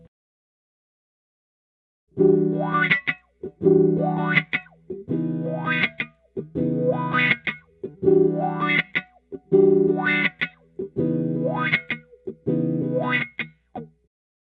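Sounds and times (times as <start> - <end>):
modern wah effect: 2.2 - 13.5.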